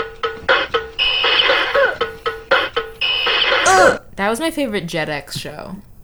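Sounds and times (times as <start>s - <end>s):
alarm clock sustained ringing tones: 0.0s - 4.0s
monkey drummer alarm clock beeping: 0.0s - 4.6s
speech: 4.3s - 5.9s.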